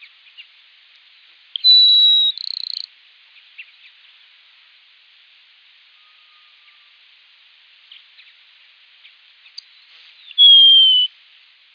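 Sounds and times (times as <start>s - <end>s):
Grassland Sparrow Ammodramus humeralis song with buzzy trill: 1.6s - 2.9s, 9.5s - 11.1s.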